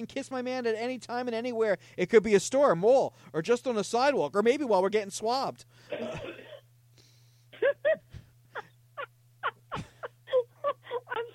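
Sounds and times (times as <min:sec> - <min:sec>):
speech: 0:00.0 - 0:06.4
steady low electrical hum: 0:00.0 - 0:11.3
man coughing heavily with harsh voiced hacking: 0:05.9 - 0:06.6, 0:07.6 - 0:08.0.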